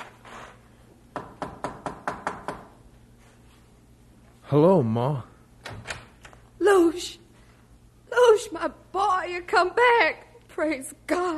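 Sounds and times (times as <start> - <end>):
quiet low hum: 0.0 - 11.3
firm knocks on the wooden door of an old home: 1.1 - 2.8
speech: 4.5 - 5.3, 6.7 - 7.2, 8.4 - 11.3.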